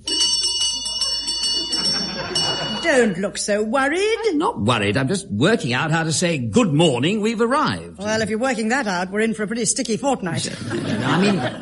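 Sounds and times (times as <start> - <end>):
laughter: 0.0 - 3.2, 10.5 - 11.6
door bell rung by pulling a chain: 0.0 - 3.4
speech: 2.9 - 11.6.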